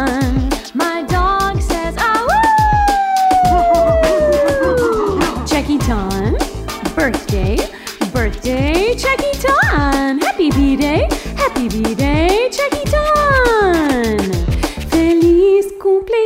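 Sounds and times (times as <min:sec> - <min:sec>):
steady rhythmic music: 0:00.0 - 0:15.6
dog howling: 0:02.4 - 0:05.4.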